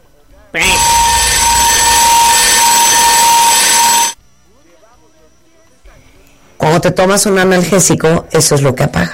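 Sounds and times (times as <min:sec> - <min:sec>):
loud harsh alarm with steady buzzing tone: 0:00.6 - 0:04.2
speech: 0:06.8 - 0:09.1.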